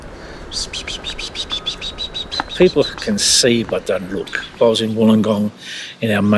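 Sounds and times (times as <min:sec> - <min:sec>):
grey fantail calling around a small sapling in gardens: 0:00.0 - 0:05.0
low outdoor hiss: 0:00.0 - 0:06.3
speech: 0:00.5 - 0:01.5, 0:02.6 - 0:06.3.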